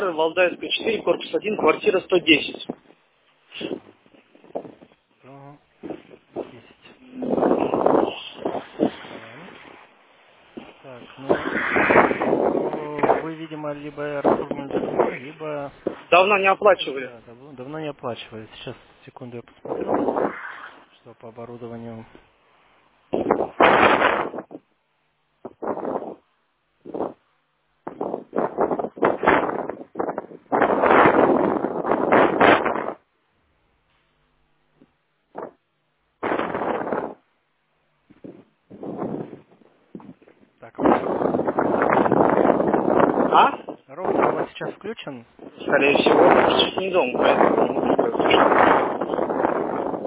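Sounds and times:
speech: 0.0s - 3.0s, 13.2s - 20.4s, 21.0s - 22.3s, 45.0s - 47.7s
wind buffeting the microphone: 0.0s - 22.3s, 23.1s - 24.7s, 25.4s - 27.2s, 27.8s - 33.1s, 35.3s - 37.3s, 38.1s - 50.0s.

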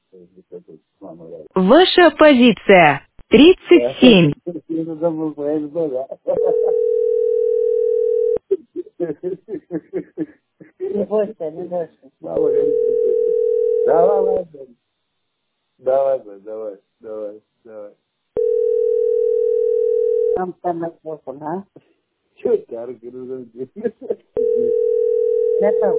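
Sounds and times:
speech: 0.3s - 7.1s, 9.0s - 10.3s, 10.9s - 14.8s, 15.8s - 19.1s, 20.4s - 25.9s
laughter: 6.0s - 6.8s, 8.4s - 11.4s, 23.6s - 24.4s
telephone ringback tone: 6.4s - 8.4s, 12.4s - 14.4s, 18.4s - 20.4s, 24.4s - 25.9s.

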